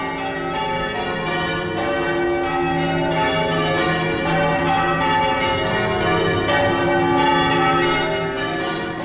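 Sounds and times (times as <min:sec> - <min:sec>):
church bells in change ringing: 0:00.0 - 0:09.0.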